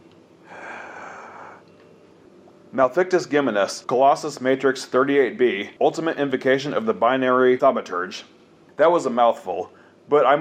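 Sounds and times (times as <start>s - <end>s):
deep inhaled breath taken before speaking: 0.4s - 1.7s
speech: 2.7s - 10.3s.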